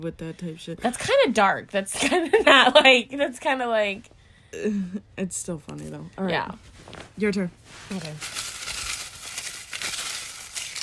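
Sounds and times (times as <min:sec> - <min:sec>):
speech: 0:00.0 - 0:08.4
items being rustled around: 0:06.3 - 0:10.8.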